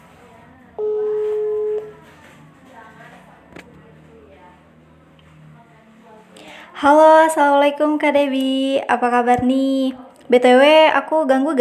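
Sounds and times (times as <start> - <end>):
faint murmur: 0.0 - 7.2
telephone call ringing tone: 0.8 - 2.1
speech: 6.8 - 11.6.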